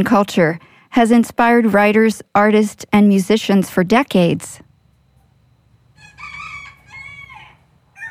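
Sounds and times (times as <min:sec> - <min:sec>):
speech: 0:00.0 - 0:04.7
steady low hum: 0:00.0 - 0:08.0
rooster crowing: 0:05.9 - 0:08.0.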